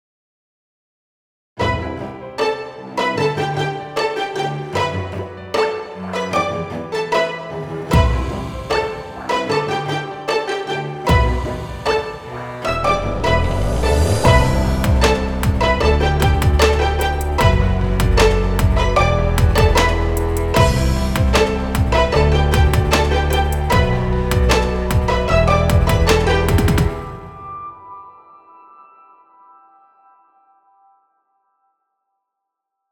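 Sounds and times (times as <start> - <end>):
ambient electronic music: 2.8 - 28.6.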